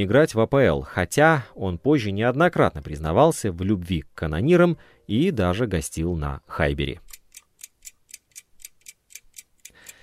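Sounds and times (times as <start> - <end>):
speech: 0.0 - 7.0
clock ticking: 7.0 - 10.0.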